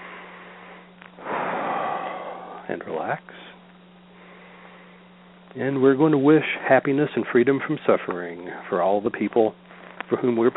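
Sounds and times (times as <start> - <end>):
slow deep breath during a guided relaxation prayer: 0.0 - 2.7, 4.1 - 5.2
speech: 2.7 - 3.5, 5.5 - 10.5.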